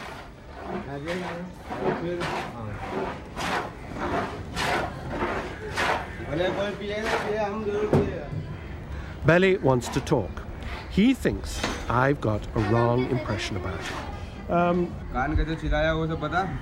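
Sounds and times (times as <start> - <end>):
hand plane scraping along an old wooden board: 0.0 - 7.6
voices murmuring: 0.0 - 16.6
speech: 0.9 - 4.1, 5.6 - 8.4, 9.2 - 16.6.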